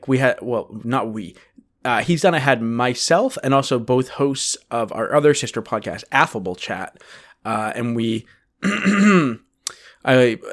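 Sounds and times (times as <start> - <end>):
speech: 0.0 - 10.5
person clearing throat: 8.6 - 9.5.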